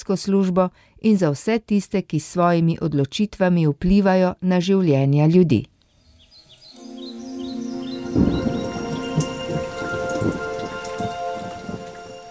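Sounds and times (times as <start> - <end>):
speech: 0.0 - 5.7
rain pouring: 6.8 - 12.2
thunder rumbling: 7.5 - 12.2.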